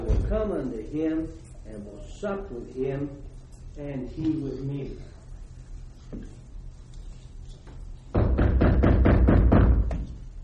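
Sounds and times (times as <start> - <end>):
speech: 0.3 - 5.2, 6.1 - 6.4
loud heavy knocks on a door: 8.1 - 10.2.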